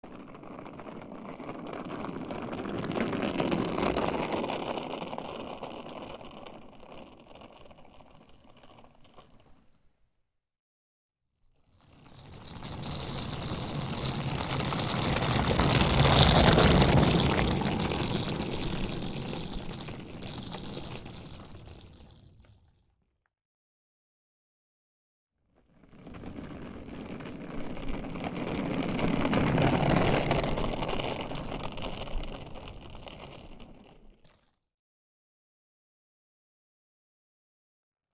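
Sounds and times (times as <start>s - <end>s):
suitcase being pulled: 0.0s - 9.9s, 11.7s - 22.7s, 25.7s - 34.5s.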